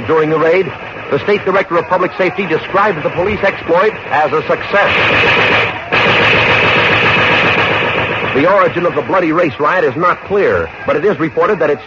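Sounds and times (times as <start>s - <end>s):
speech: 0.1s - 6.3s, 8.4s - 11.8s
machine gun fire during a police raid: 0.1s - 9.6s
scattered gunshots: 0.1s - 11.8s.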